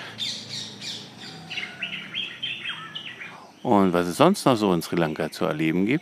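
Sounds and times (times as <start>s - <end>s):
orioles, bulbuls and sunbirds chirping and whistling in Sri Lanka: 0.0s - 6.0s
speech: 3.6s - 6.0s.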